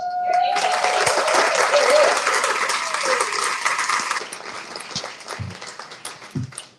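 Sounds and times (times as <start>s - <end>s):
room full of people applauding: 0.0s - 6.7s.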